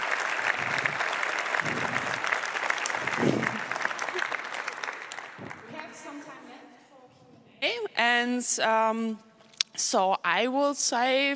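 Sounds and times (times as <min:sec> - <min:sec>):
audience applauding after a presentation: 0:00.0 - 0:06.2
low voices: 0:00.5 - 0:03.8
speech: 0:08.4 - 0:11.3.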